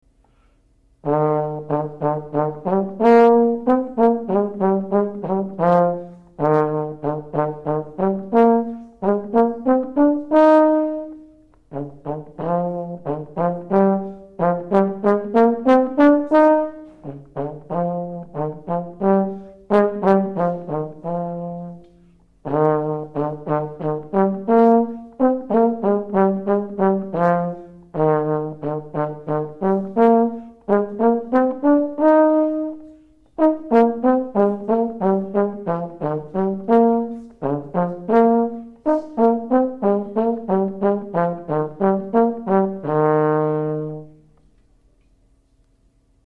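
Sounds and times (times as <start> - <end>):
trombone: 1.0 - 44.4.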